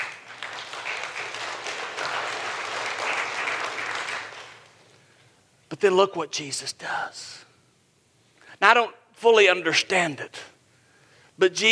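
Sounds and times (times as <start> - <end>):
large crowd applauding: 0.0 - 4.7
speech: 5.8 - 7.5, 8.6 - 10.5, 11.4 - 11.7.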